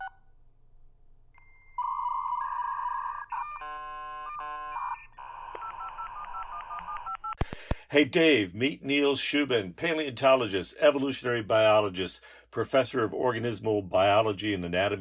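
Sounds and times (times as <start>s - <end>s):
dial-up modem dialing touch-tone beeps: 1.8s - 7.5s
speech: 7.9s - 15.0s.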